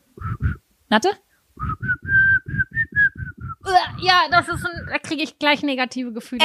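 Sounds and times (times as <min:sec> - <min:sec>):
person whistling a short bouncy pop melody: 0:00.2 - 0:00.6, 0:01.6 - 0:03.7
speech: 0:00.9 - 0:01.2, 0:03.7 - 0:06.4.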